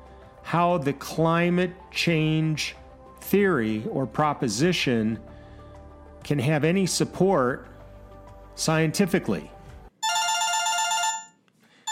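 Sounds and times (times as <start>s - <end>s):
speech: 0.5s - 5.3s, 6.2s - 7.7s, 8.6s - 9.5s
telephone ringing with an electronic trill: 10.0s - 11.8s.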